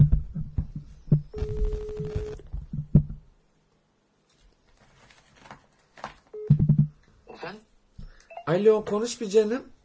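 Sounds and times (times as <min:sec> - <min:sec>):
electronic phone ringing tone while dialing: 0:01.3 - 0:02.4, 0:06.4 - 0:06.8
speech: 0:08.5 - 0:09.8.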